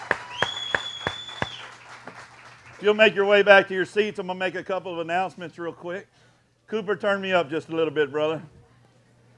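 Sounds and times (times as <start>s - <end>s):
audience applauding singers in a hall: 0.0s - 3.3s
faint high whistling tone: 0.3s - 1.7s
speech: 2.8s - 8.6s.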